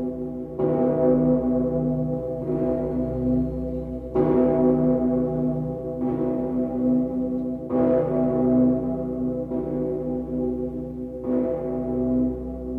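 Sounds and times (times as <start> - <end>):
huge deep bell of Cologne Cathedral in Germany cast from cannons tolling: 0.0 - 12.7.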